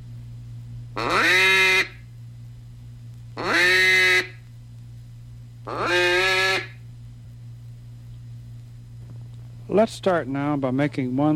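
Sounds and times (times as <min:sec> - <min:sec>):
faint steady low hum: 0:00.0 - 0:11.3
speech: 0:01.0 - 0:01.4, 0:09.8 - 0:11.3
hen mallard quacks blown on a duck call: 0:01.0 - 0:02.0, 0:03.4 - 0:04.4, 0:05.7 - 0:06.8.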